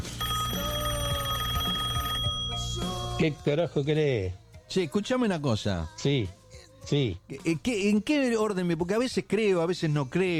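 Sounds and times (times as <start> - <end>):
telephone ringing tone on an outgoing call: 0.0 - 3.2
speech: 3.2 - 10.3.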